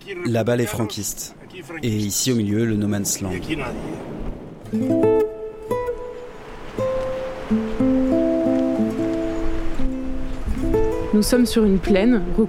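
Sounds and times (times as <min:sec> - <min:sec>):
speech: 0:00.0 - 0:05.2, 0:11.2 - 0:12.4
river flowing across a plain of olive and almond trees: 0:00.0 - 0:12.4.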